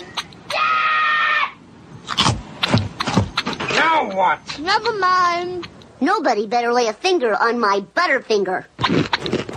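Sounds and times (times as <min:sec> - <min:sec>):
person screaming: 0:00.5 - 0:01.6
rustling or thumping bursts: 0:02.2 - 0:03.9
speech: 0:04.2 - 0:09.4.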